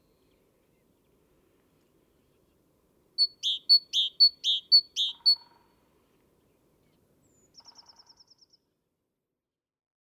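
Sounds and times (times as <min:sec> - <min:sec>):
great tit Parus major calling: 0:03.2 - 0:05.5.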